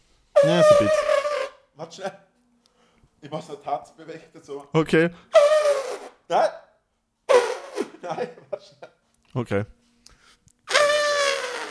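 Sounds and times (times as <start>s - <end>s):
speech: 0.4s - 1.2s, 1.8s - 2.3s, 3.2s - 5.6s, 6.3s - 6.6s, 8.0s - 9.8s
person imitating an elephant trumpeting: 0.4s - 1.6s, 5.3s - 6.2s, 7.3s - 7.9s, 10.7s - 11.7s
quiet breath: 2.6s - 3.2s, 9.8s - 10.5s
laughter: 7.8s - 9.0s.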